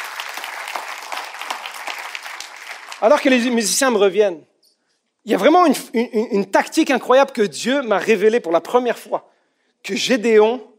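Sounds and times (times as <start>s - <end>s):
congregation applauding during a church service: 0.0s - 3.7s
speech: 3.0s - 4.5s, 5.2s - 10.7s.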